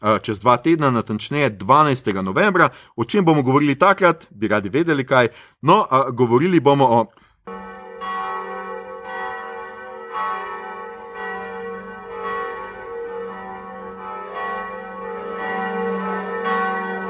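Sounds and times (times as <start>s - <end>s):
speech: 0.1s - 7.6s
church bells ringing at noon: 7.5s - 17.0s.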